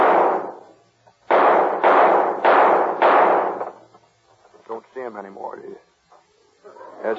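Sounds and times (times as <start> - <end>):
gunshots fired at knobs on top of a street sign: 0.0 - 3.9
speech: 5.1 - 5.9.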